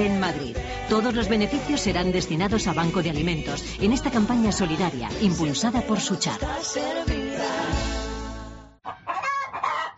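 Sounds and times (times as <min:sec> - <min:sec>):
speech: 0:00.0 - 0:08.0
hen squawking and clucking: 0:08.8 - 0:09.9.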